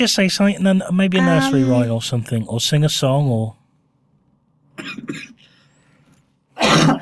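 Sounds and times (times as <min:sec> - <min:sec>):
speech: 0:00.0 - 0:03.6, 0:04.8 - 0:05.3
person coughing into a microphone: 0:04.8 - 0:05.4, 0:06.6 - 0:07.0.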